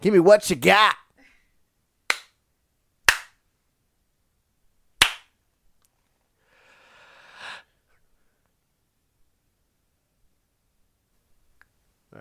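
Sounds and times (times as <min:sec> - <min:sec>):
speech: 0:00.0 - 0:01.0
finger snaps: 0:02.1 - 0:02.4
hand slaps: 0:02.1 - 0:02.4, 0:03.0 - 0:03.4, 0:05.0 - 0:05.4.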